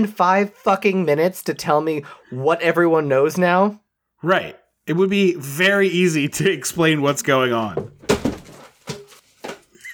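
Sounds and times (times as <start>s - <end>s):
speech: 0.0s - 8.0s
video chat device knocked over with thumps and clatters: 7.7s - 9.8s.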